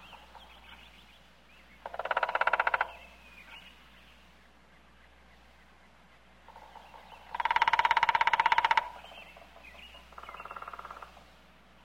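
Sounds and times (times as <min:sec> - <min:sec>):
woodpecker drumming in a forest: 0:01.8 - 0:03.6, 0:06.5 - 0:11.3.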